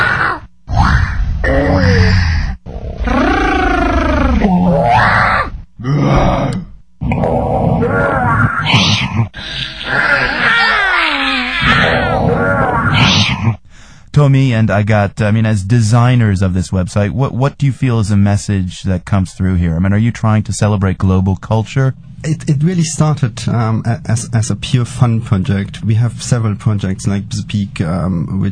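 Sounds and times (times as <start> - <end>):
children's voices imitating lion roars: 0.0 - 8.8, 9.4 - 13.2
speech: 14.2 - 28.5.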